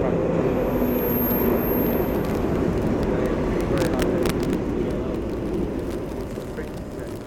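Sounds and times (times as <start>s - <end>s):
distorted electrostatic interference recorded aboard an underground train: 0.2s - 7.2s
sharp bursts of static: 0.5s - 7.2s.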